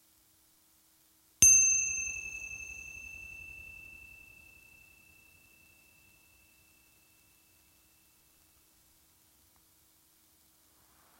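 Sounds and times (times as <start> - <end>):
meditation bell ringing during a guided meditation: 1.4 - 8.2.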